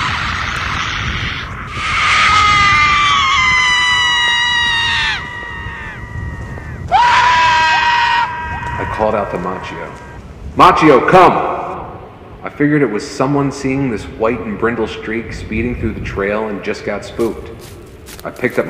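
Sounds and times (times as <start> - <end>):
loud shrill screaming from the woods: 0.0 - 10.2
speech: 9.1 - 11.5, 12.6 - 18.6.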